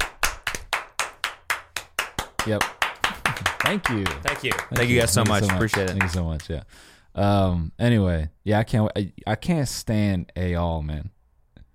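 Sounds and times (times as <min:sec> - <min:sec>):
rhythmic clapping: 0:00.0 - 0:06.6
speech: 0:02.4 - 0:11.2.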